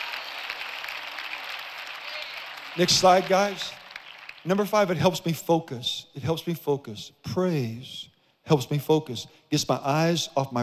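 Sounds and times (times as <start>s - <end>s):
church congregation clapping hands in praise during a worship service: 0.0s - 5.2s
speech: 2.8s - 3.8s, 4.4s - 10.6s.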